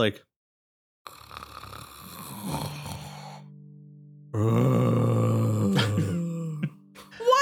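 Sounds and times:
speech: 0:00.0 - 0:00.3, 0:04.3 - 0:05.3
person vocally imitating ghostly sleep snoring: 0:01.1 - 0:03.5, 0:04.4 - 0:06.8.

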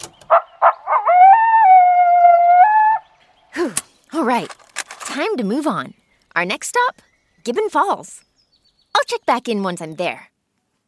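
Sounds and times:
coyote yipping and howling at night: 0:00.3 - 0:03.2
speech: 0:04.3 - 0:04.6, 0:05.2 - 0:08.3, 0:09.1 - 0:10.3.

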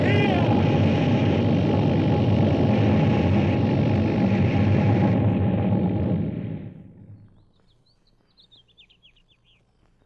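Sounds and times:
flying saucer descending and landing on grass: 0:00.0 - 0:07.3.

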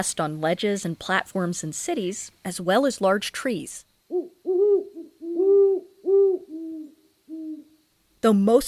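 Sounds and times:
speech: 0:00.0 - 0:04.2, 0:08.2 - 0:08.6
great horned owl hooting: 0:04.1 - 0:07.9.

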